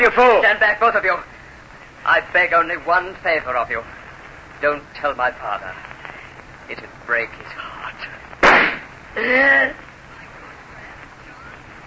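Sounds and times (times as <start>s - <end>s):
speech: 0.0s - 1.4s, 2.0s - 4.0s, 4.6s - 5.9s, 6.7s - 8.2s, 9.2s - 9.9s
pistol gunshot: 8.4s - 8.9s
person crying out: 9.2s - 9.8s.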